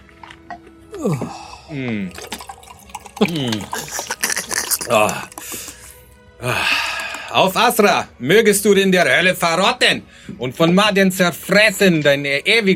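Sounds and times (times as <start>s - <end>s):
liquid pouring into a cup: 0.1s - 7.5s
speech: 1.0s - 2.4s, 3.2s - 4.1s, 4.8s - 5.6s, 6.4s - 12.7s.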